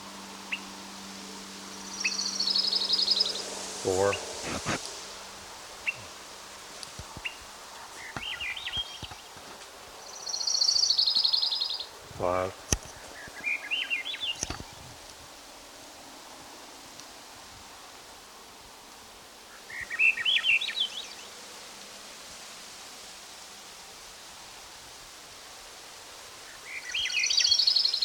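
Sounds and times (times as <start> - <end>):
thrush singing: 0.0 - 9.0
steady hiss of outdoor noise: 0.0 - 28.0
speech: 3.8 - 4.9, 12.2 - 12.6.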